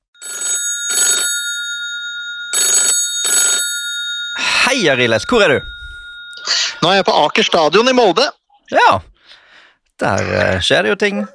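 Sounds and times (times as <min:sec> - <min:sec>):
electronic telephone ringing tone of an outgoing call: 0:00.1 - 0:08.1
speech: 0:04.7 - 0:05.8, 0:06.4 - 0:09.1, 0:10.0 - 0:11.3.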